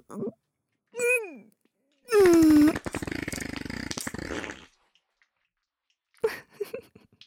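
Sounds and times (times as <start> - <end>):
brief vocal sounds: 1.0 - 1.4, 2.1 - 2.8
loud drawn-out fart: 2.1 - 4.8.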